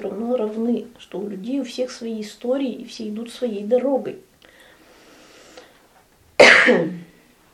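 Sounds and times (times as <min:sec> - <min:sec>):
speech: 0:00.0 - 0:04.3, 0:06.6 - 0:07.0
raspy throaty cough: 0:06.4 - 0:07.1.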